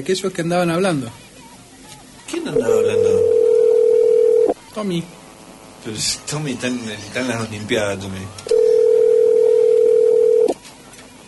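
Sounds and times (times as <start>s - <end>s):
speech: 0.0s - 1.3s, 2.3s - 3.2s, 4.8s - 5.2s, 5.8s - 8.6s
telephone ringback tone on an unanswered call: 2.5s - 4.6s, 8.5s - 10.5s.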